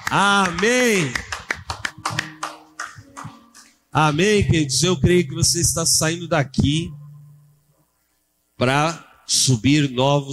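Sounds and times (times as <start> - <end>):
audience applauding: 0.0 - 3.8
faint sustained musical tone humming: 0.0 - 10.3
speech: 0.1 - 1.3, 3.9 - 7.0, 8.6 - 10.3.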